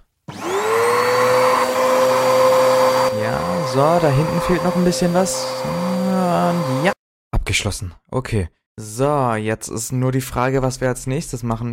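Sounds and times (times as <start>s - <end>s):
vacuum cleaner running at full power: 0.3s - 7.0s
speech: 3.8s - 11.7s.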